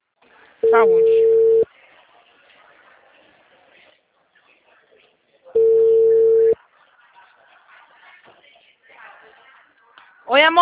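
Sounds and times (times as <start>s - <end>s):
telephone ringing tone: 0.6s - 1.6s, 5.6s - 6.6s
speech: 0.7s - 1.3s.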